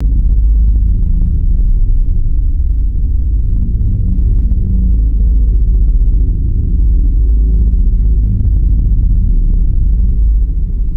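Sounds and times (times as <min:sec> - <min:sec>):
deep throbbing sci fi synthetic drone: 0:00.0 - 0:10.9.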